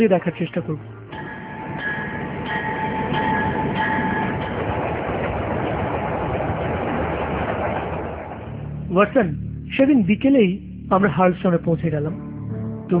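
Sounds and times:
speech: 0.0s - 0.9s, 8.9s - 12.2s
train travelling on rails: 0.0s - 9.5s
high tonal pings: 0.8s - 6.2s.

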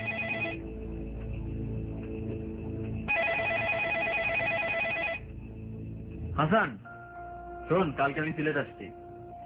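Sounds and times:
mobile phone electronic ringtone for an incoming call: 0.0s - 0.6s, 3.1s - 5.2s
constant low hum: 0.0s - 6.5s
speech: 6.4s - 6.9s, 7.7s - 9.0s.

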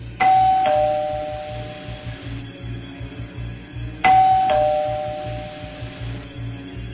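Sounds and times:
two-tone doorbell ringing: 0.2s - 2.1s, 4.0s - 6.0s.

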